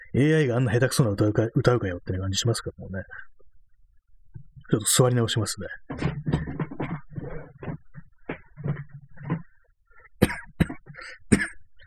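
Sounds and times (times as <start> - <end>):
speech: 0.2 - 3.4, 4.7 - 6.6
harsh forceful coughing fit: 10.2 - 11.6.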